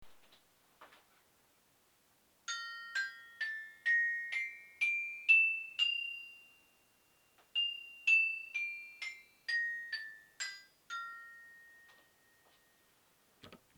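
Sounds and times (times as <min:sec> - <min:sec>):
toy piano: 0:02.5 - 0:13.0
bells: 0:02.5 - 0:13.3.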